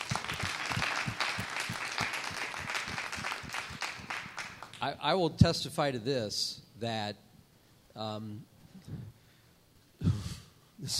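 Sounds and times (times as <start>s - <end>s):
audience applause in a room: 0.0s - 4.8s
speech: 4.8s - 7.2s, 8.0s - 8.5s.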